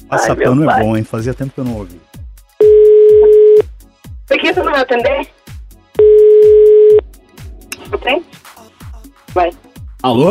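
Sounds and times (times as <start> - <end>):
speech: 0.1 - 2.1, 4.3 - 5.4, 7.9 - 8.4, 9.3 - 10.2
telephone line tone while a call is placed: 2.6 - 3.6, 6.0 - 7.0.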